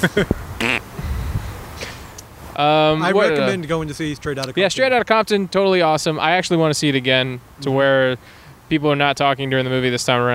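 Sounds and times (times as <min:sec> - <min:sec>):
speech: 0:00.0 - 0:01.0, 0:02.6 - 0:10.3
short buzzy raspy farting noises: 0:00.6 - 0:01.0.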